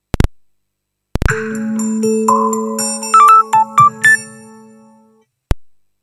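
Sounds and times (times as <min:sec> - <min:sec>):
Gigaset GS160 phone startup sound: 0:01.3 - 0:05.2.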